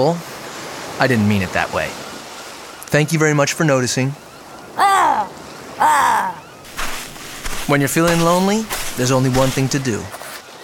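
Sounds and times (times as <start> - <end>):
speech: 0.0 - 0.3, 1.0 - 2.0, 2.9 - 4.2, 7.7 - 10.2
crow cawing: 4.8 - 6.4.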